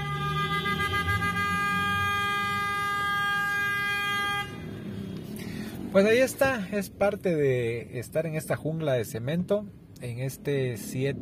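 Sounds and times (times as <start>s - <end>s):
car horns honking in city street traffic at an intersection: 0.0s - 5.2s
speech: 6.0s - 11.2s.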